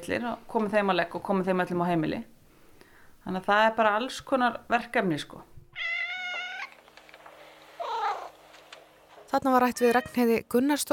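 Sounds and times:
speech: 0.0 - 2.3, 3.2 - 5.9, 9.3 - 10.9
cat meowing: 5.7 - 6.8, 7.8 - 8.4.

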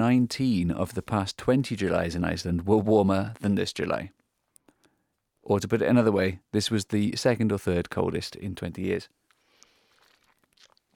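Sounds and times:
speech: 0.1 - 4.2, 5.5 - 9.2
sipping water: 9.2 - 10.9
gulp: 9.4 - 10.9.

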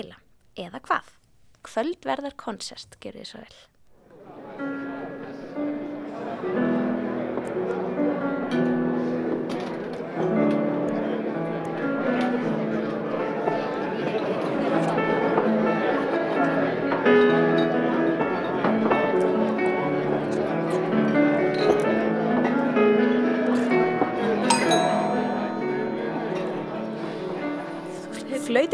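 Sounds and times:
speech: 0.0 - 3.7
murmur of many voices in a fine restaurant: 4.0 - 28.7
pianist playing piano in a fine restaurant: 4.8 - 28.7
glasses clinking in a fine restaurant: 24.5 - 26.8.

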